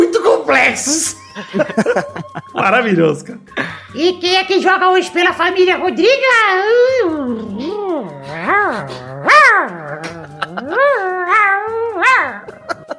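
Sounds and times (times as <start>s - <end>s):
speech: 0.5s - 12.8s
laughter: 0.9s - 4.0s, 9.7s - 12.9s
dog whining and howling: 6.8s - 12.6s.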